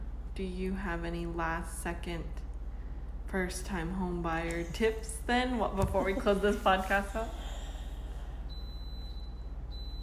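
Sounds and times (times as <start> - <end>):
speech: 0.4 - 2.5, 3.3 - 7.6
high-pitched electronic timer alarm beeping: 8.5 - 10.0.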